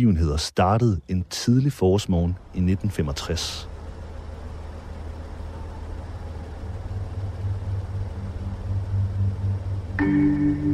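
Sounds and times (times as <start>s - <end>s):
speech: 0.0s - 3.7s, 10.0s - 10.7s
military buses and trucks driving off: 0.2s - 10.7s
louder droning engine tone of trucks and buses pulling away: 2.4s - 10.7s.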